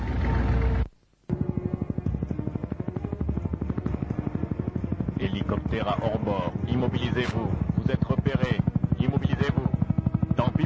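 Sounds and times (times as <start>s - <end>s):
burst of broadband noise: 0.9s - 1.3s
helicopter rotor chopping: 1.3s - 10.6s
speech: 5.4s - 9.7s.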